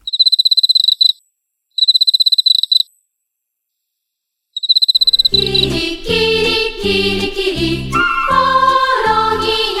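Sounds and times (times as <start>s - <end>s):
Emma field cricket chirping: 0.0s - 1.2s, 1.8s - 2.9s, 4.6s - 5.7s
instrumental music: 5.0s - 9.7s.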